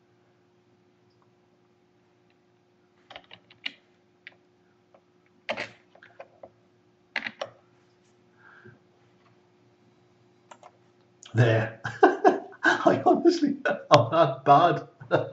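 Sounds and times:
low steady hum: 0.0 - 15.3
typing on a computer keyboard: 7.2 - 7.5, 10.5 - 10.7
speech: 11.4 - 12.0, 12.8 - 15.3
laughter: 11.4 - 15.3.

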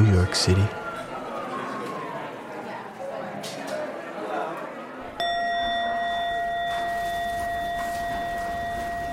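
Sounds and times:
murmuring room noise: 0.0 - 9.1
speech: 0.2 - 0.8
bell ringing out: 5.2 - 9.1
shuffling: 6.6 - 9.1.

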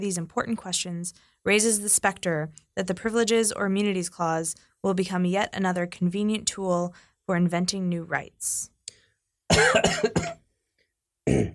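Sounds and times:
speech: 0.0 - 8.7, 9.5 - 10.4, 11.3 - 11.5
person coughing and clearing throat: 9.5 - 10.4, 11.3 - 11.5.

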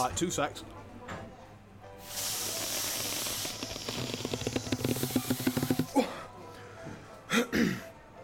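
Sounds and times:
speech: 0.0 - 0.8
person blowing by mouth into a kid's balloon to make a snake balloon animal: 2.0 - 6.0.

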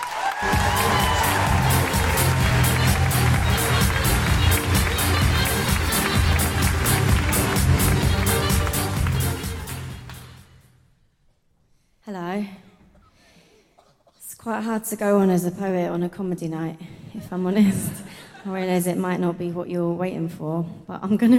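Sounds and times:
audience applause at a comedy night: 0.0 - 10.1
speech: 14.5 - 21.3.

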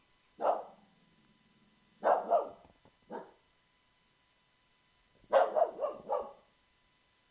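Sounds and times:
dog barking at a window in a house: 0.4 - 0.9, 2.0 - 3.4, 5.3 - 6.5.

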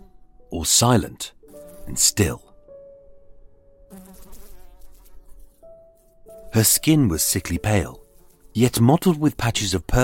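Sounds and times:
flies buzzing around a dead body in a room: 0.0 - 0.4, 1.4 - 2.4, 3.8 - 9.4
speech: 0.6 - 2.4, 6.6 - 10.0.

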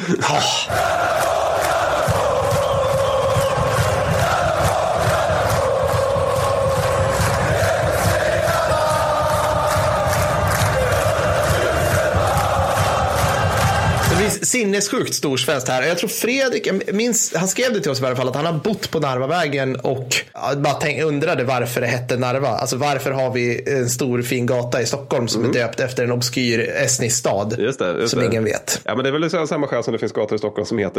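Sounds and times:
dense crowd of football supporters chanting and roaring: 0.0 - 14.4
speech: 0.1 - 1.1, 14.4 - 30.9.

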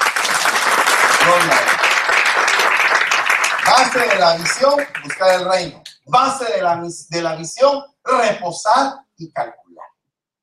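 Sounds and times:
crowd clapping and applauding: 0.0 - 5.8
speech: 3.8 - 9.9.

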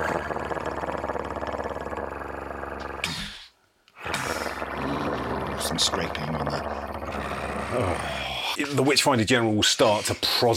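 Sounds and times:
deep guttural wolf growl: 0.0 - 3.4, 4.0 - 8.6
speech: 5.7 - 6.8, 7.8 - 10.5.

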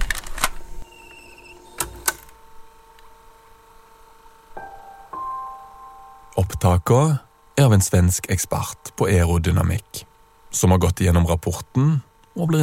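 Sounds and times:
old audio cassettes loaded into a player, mechanical clicks and clunks: 0.0 - 0.7, 1.8 - 2.4
steady faint cassette player motor hum: 0.0 - 12.6
speech: 6.4 - 12.6.

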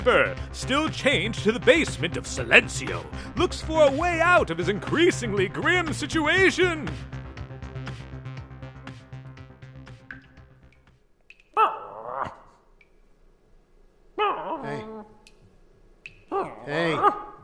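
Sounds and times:
speech: 0.0 - 7.2
dog whimpering barks: 11.6 - 12.6, 14.2 - 15.2, 16.3 - 17.4.

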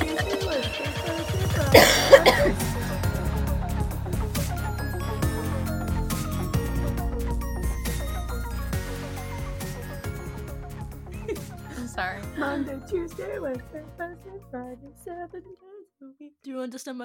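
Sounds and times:
steady music: 0.0 - 15.6
person coughing: 1.7 - 2.7
speech: 13.1 - 17.0.

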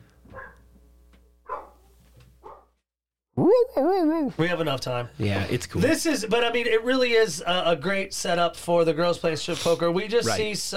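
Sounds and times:
dog howling and barking upstairs: 1.5 - 1.8
speech: 3.4 - 10.7.

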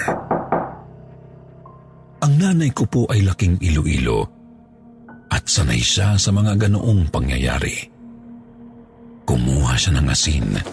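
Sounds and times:
firm knocking on a wooden door: 0.0 - 0.9
speech: 2.5 - 4.4, 5.5 - 8.0, 9.3 - 10.7.

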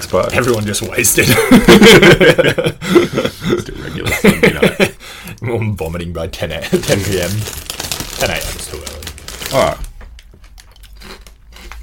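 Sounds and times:
crunching Twisties snack chips being chewed: 0.0 - 1.3, 6.7 - 11.8
speech: 0.0 - 9.9
laughter: 1.2 - 5.0.

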